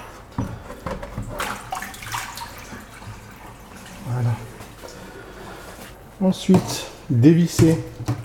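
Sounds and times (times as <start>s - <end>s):
water poured from a tub into a sink: 1.2s - 5.1s
speech: 6.2s - 8.2s.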